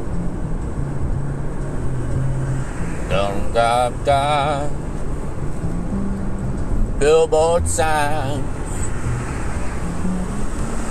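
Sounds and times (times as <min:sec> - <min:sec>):
highway traffic noise of passing vehicles: 0:00.0 - 0:10.8
speech: 0:03.1 - 0:04.9, 0:07.0 - 0:08.6.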